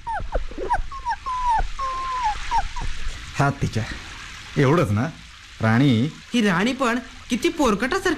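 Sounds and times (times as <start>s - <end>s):
soaked shivering puppy whimpering outside: 0.0s - 3.1s
speech: 3.4s - 4.0s, 4.6s - 8.1s.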